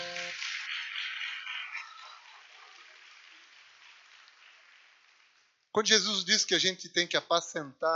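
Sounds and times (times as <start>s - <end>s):
audience applause: 0.0s - 6.3s
speech: 5.8s - 7.9s.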